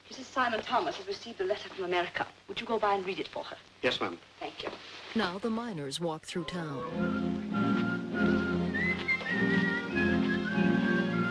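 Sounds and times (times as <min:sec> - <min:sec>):
speech: 0:00.3 - 0:08.5
miner whistling a wandering tune while walking through town: 0:06.9 - 0:11.2.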